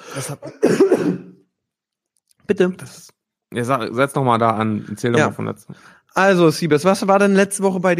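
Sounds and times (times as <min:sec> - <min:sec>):
person coughing: 0:00.1 - 0:01.4
raspy throat-clearing hack: 0:00.1 - 0:01.4
speech: 0:00.2 - 0:01.3, 0:02.5 - 0:07.9.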